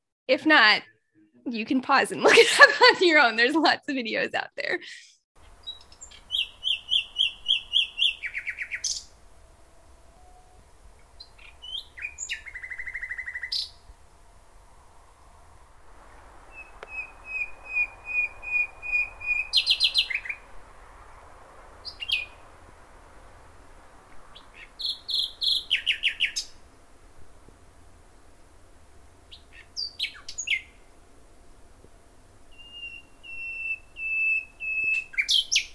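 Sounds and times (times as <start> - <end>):
speech: 0.3 - 5.1
laughter: 2.2 - 3.2
common nightingale singing: 5.4 - 13.9, 16.4 - 22.5, 24.2 - 26.6, 29.3 - 30.9, 32.5 - 35.7
quiet hum: 5.4 - 35.7.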